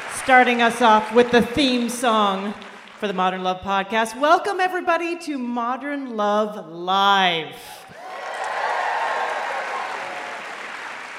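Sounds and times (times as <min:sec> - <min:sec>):
live audience applause: 0:00.0 - 0:03.0, 0:07.9 - 0:11.1
speech: 0:00.2 - 0:07.9.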